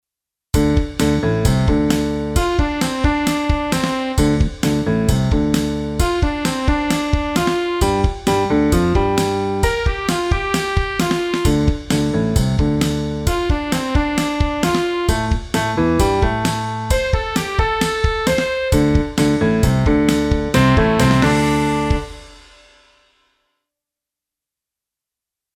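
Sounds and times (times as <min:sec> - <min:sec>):
blues bass line: 0:00.6 - 0:10.6, 0:11.4 - 0:13.4, 0:14.1 - 0:22.3.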